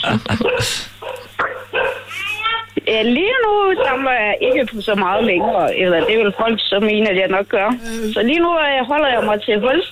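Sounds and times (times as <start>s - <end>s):
speech: 0.0s - 0.9s, 2.9s - 9.9s
faint steady hum: 0.0s - 9.9s
several dogs barking and yipping: 0.3s - 2.2s, 3.6s - 6.6s.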